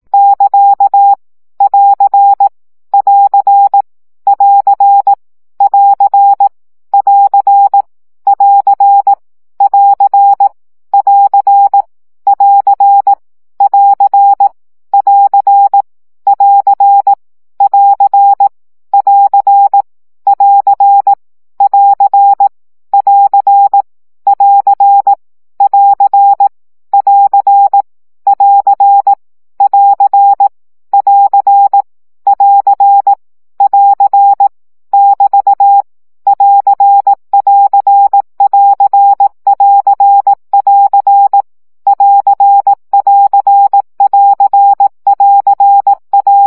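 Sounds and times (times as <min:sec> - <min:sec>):
Morse code practice tones at 15 baud: 0:00.1 - 0:46.4.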